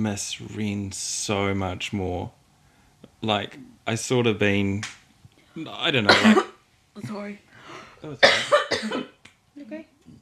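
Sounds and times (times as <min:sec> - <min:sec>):
speech: 0:00.0 - 0:02.4, 0:03.2 - 0:05.0, 0:05.6 - 0:10.2
person coughing after tea went down the wrong way: 0:05.6 - 0:06.6, 0:08.2 - 0:09.2
breathy intake between coughs: 0:07.5 - 0:08.0.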